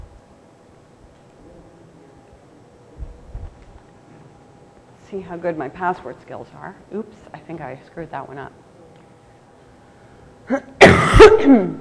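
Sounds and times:
speech: 0:05.1 - 0:08.6, 0:11.5 - 0:11.7
harsh cough: 0:10.5 - 0:11.7.

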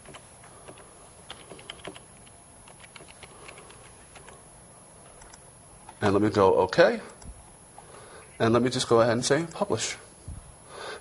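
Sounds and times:
typing login credentials on a computer keyboard: 0:00.0 - 0:04.4
speech: 0:06.0 - 0:07.1, 0:08.4 - 0:10.0.

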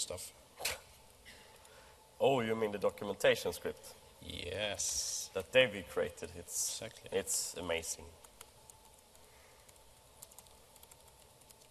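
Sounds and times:
speech: 0:00.0 - 0:00.7, 0:02.2 - 0:08.2
low hum: 0:00.0 - 0:11.6
typing on a computer keyboard: 0:08.2 - 0:11.6.

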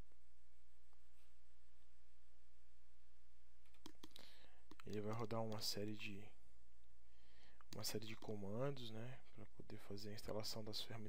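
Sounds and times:
faint computer mouse clicks in an installation wizard: 0:03.7 - 0:05.8, 0:07.6 - 0:08.4
speech: 0:04.9 - 0:06.4, 0:07.8 - 0:11.0.

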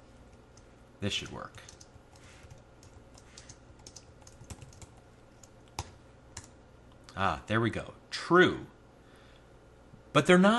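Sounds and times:
speech: 0:01.0 - 0:01.8, 0:07.2 - 0:08.8, 0:10.1 - 0:10.5
typing on a computer keyboard while writing code: 0:01.5 - 0:06.6.

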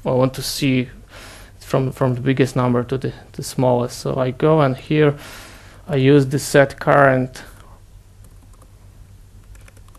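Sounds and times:
speech: 0:00.0 - 0:07.5
soft typing on a computer keyboard: 0:08.2 - 0:08.7, 0:09.4 - 0:09.9.

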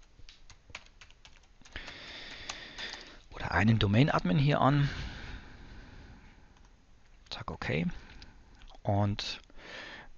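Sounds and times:
typing a user name on a computer keyboard: 0:00.0 - 0:03.3
speech: 0:03.5 - 0:05.0, 0:07.7 - 0:08.0, 0:08.8 - 0:09.4.

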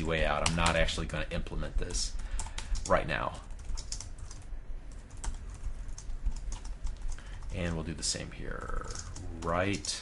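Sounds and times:
speech: 0:00.0 - 0:02.3, 0:02.9 - 0:03.5, 0:07.5 - 0:10.0
typing on a computer keyboard while writing code: 0:02.2 - 0:07.6, 0:08.6 - 0:10.0.

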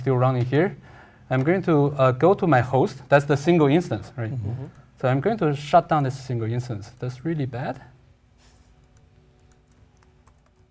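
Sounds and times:
speech: 0:00.0 - 0:07.9
low hum: 0:00.0 - 0:10.7
typing on a computer keyboard: 0:08.8 - 0:10.7.

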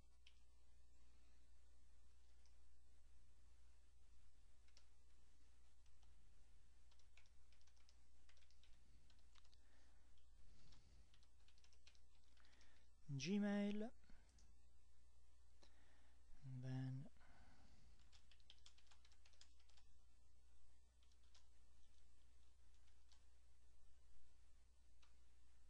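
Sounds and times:
typing on a computer keyboard: 0:04.6 - 0:05.0, 0:06.8 - 0:12.9, 0:18.0 - 0:19.9, 0:21.0 - 0:23.3
speech: 0:13.2 - 0:14.0.

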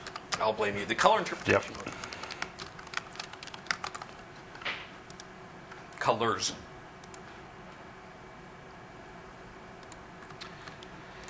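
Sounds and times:
typing on a computer keyboard while coding an app: 0:00.0 - 0:00.4, 0:01.4 - 0:05.3, 0:09.8 - 0:11.2
speech: 0:00.4 - 0:02.0, 0:06.0 - 0:06.6.

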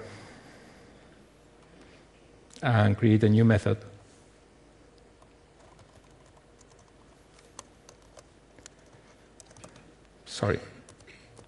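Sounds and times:
speech: 0:02.6 - 0:04.0, 0:10.4 - 0:10.7
typing on a computer keyboard while writing code: 0:05.6 - 0:07.0, 0:07.6 - 0:09.9.

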